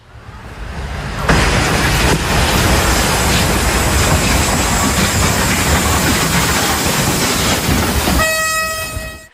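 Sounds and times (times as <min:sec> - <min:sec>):
passenger train striking a truck on tracks: 0:01.2 - 0:09.2
train horn blaring: 0:08.2 - 0:09.3.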